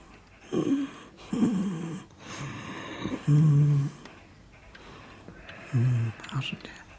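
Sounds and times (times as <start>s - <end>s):
sleeping man snoring softly: 0.5s - 4.0s, 5.6s - 6.2s.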